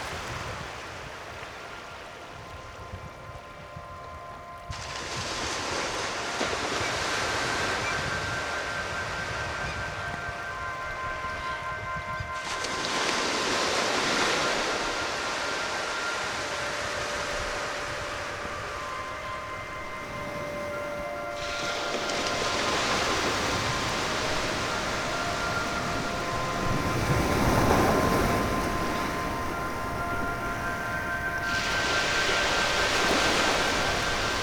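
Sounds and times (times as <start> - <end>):
twinkling reverb sound: 0.1 - 34.4.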